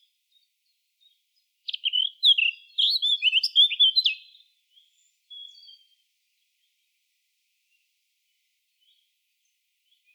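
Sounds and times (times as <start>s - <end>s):
Eurasian blackcap Sylvia atricapilla singing fluty warbling notes: 1.7s - 4.3s.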